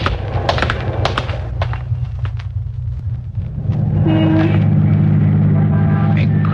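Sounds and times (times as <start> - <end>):
scattered knocks and passing clatter: 0.0 - 5.0
car engine rumbling through busy street traffic: 0.0 - 6.5
dense drone of vehicles: 0.0 - 6.5.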